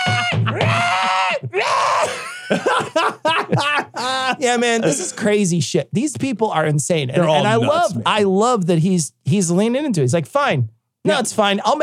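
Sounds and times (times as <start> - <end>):
voice imitating the screech of an alien body-snatching pod person: 0.0 - 2.2
laughter: 0.0 - 5.4, 7.2 - 8.1
speech: 4.3 - 11.8.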